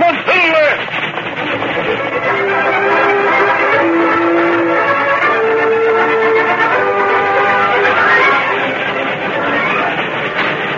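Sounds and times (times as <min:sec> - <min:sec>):
steam train rumbling and clattering along the track beyond a canyon opening: 0:00.0 - 0:10.7
brief whistle-like tones of steam train: 0:02.4 - 0:10.7.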